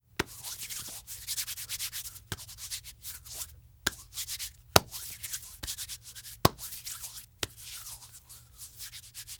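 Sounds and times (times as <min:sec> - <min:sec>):
hands rubbing: 0:00.2 - 0:09.3.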